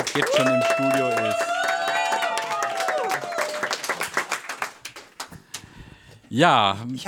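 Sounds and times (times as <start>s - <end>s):
live studio audience applauding: 0.0s - 5.6s
speech: 0.2s - 1.5s, 6.3s - 7.0s.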